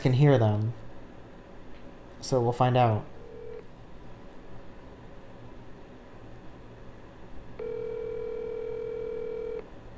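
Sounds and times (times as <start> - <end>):
speech: 0.0 - 0.8, 2.2 - 3.1
low hum: 0.0 - 9.9
telephone call being placed tone: 3.2 - 3.6, 7.6 - 9.6.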